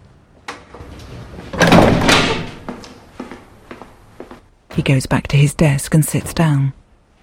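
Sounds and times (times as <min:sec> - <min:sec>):
heavy prison door clunk: 0:00.8 - 0:02.8
metallic knocks and thuds: 0:01.5 - 0:02.8
speech: 0:04.8 - 0:06.8.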